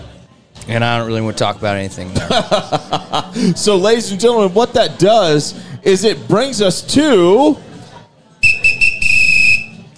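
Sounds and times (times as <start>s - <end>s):
speech: 0.7s - 7.6s
laughter: 2.1s - 3.7s
whistle blasts: 8.4s - 9.9s.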